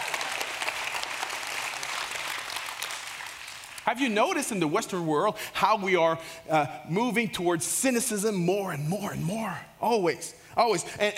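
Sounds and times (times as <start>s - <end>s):
large audience applause: 0.0s - 3.9s
speech: 3.9s - 11.1s.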